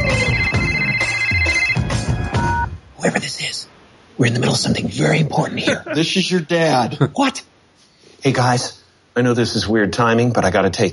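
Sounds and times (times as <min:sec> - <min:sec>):
telephone ringing with electronic trilling: 0:00.0 - 0:02.7
speech: 0:04.2 - 0:07.5, 0:08.2 - 0:10.9.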